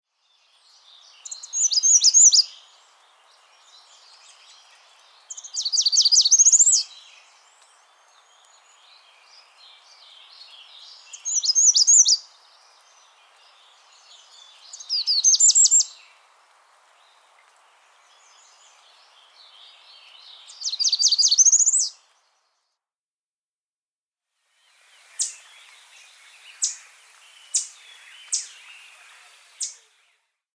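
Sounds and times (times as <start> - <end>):
American Redstart singing: 1.0 - 2.5, 5.3 - 12.2, 12.8 - 16.0, 18.3 - 22.0, 24.6 - 30.3.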